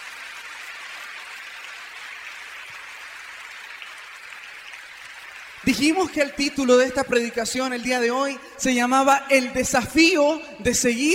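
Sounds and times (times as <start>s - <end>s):
church audience applauding after a Bible reading: 0.0s - 7.2s
speech: 5.6s - 11.1s.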